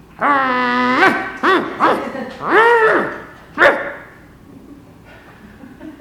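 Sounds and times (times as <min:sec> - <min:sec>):
dog barking and yowling: 0:00.8 - 0:04.1.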